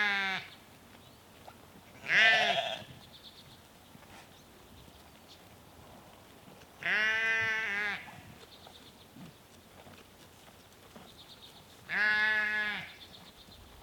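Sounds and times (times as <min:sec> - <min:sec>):
sheep from a small herd in Norway bleating: 0:02.0 - 0:02.9, 0:06.8 - 0:08.1, 0:11.9 - 0:13.0.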